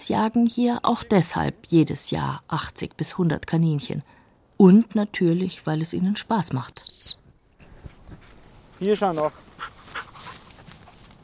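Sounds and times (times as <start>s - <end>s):
speech: 0.0s - 6.8s, 8.8s - 9.7s
dog panting and sniffing while searching rabbit burrow: 9.2s - 11.2s.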